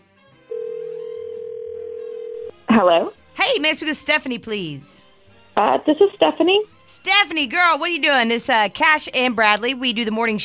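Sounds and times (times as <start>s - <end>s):
telephone dial tone as a call is placed: 0.5s - 2.5s
speech: 2.8s - 5.0s, 5.6s - 10.4s.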